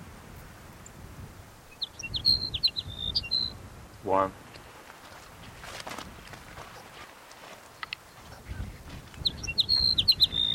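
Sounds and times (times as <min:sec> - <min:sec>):
Sage Sparrow song: 0:01.6 - 0:03.6, 0:07.7 - 0:10.5
speech: 0:04.0 - 0:04.4
soft rustle: 0:04.4 - 0:09.3.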